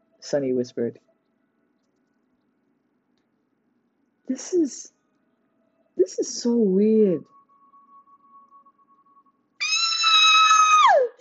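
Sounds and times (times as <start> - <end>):
speech: 0.2 - 1.1, 4.3 - 5.0, 6.1 - 7.3
high-pitched girlish screech: 9.6 - 11.2.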